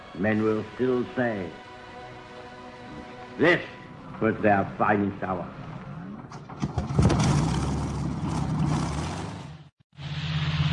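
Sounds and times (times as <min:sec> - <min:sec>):
speech: 0:00.2 - 0:01.7, 0:03.4 - 0:05.6
Rolls-Royce piston engine of a Spitfire fighter plane roaring: 0:05.5 - 0:10.7.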